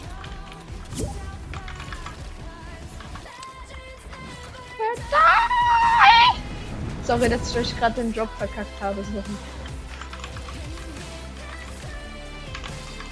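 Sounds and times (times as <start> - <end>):
man letting out a loud strained scream: 5.0 - 6.4
speech: 7.1 - 9.6.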